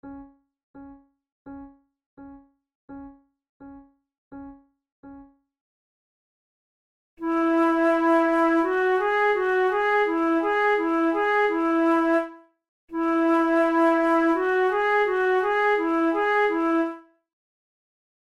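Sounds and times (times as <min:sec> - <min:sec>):
flute playing a method exercise: 0:07.2 - 0:12.4, 0:13.0 - 0:17.0.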